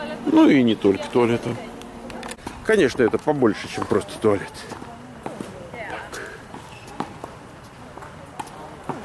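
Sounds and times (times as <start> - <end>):
faint voices: 0.0 - 9.0
speech: 0.3 - 1.7, 2.7 - 4.8
tennis balls bouncing and struck on nearby courts: 2.0 - 9.0.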